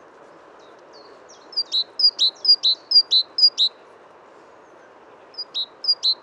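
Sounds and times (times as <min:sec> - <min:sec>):
great tit Parus major calls: 0:01.0 - 0:03.8, 0:05.4 - 0:06.2.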